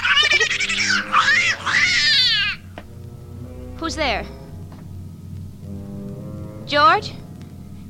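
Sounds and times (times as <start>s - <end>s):
cat yowling: 0.9s - 2.7s
speech: 3.9s - 4.4s, 6.7s - 7.2s.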